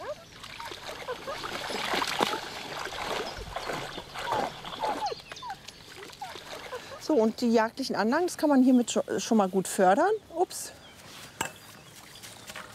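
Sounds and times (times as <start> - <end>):
dog splashing into cool water: 0.4 - 5.2
speech: 7.1 - 10.8.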